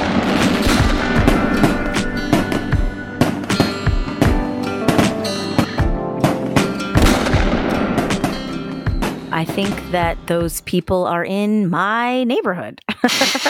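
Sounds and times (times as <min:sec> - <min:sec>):
gunshots or fireworks going off outside: 0:00.0 - 0:10.2
speech: 0:09.6 - 0:13.4
laughter: 0:12.9 - 0:13.4.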